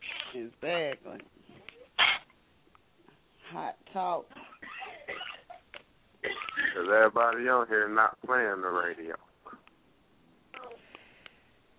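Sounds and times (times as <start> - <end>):
speech: 0.4 - 1.6, 3.5 - 4.5, 6.8 - 9.2
faint cough in the background: 4.3 - 5.6, 6.2 - 6.8.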